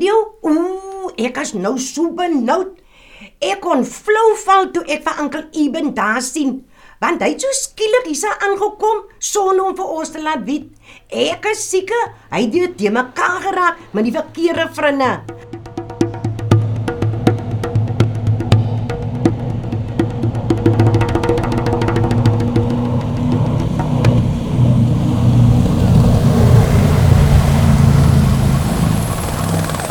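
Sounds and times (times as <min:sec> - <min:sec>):
speech: 0:01.2 - 0:02.8, 0:03.4 - 0:15.5
fast red speedboat engine roaring: 0:15.2 - 0:29.8.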